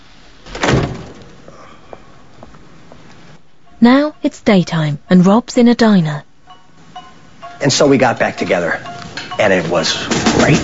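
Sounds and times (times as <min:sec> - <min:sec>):
car passenger door opening and shutting: 0:00.4 - 0:01.4
speech: 0:03.8 - 0:06.3, 0:07.6 - 0:10.6.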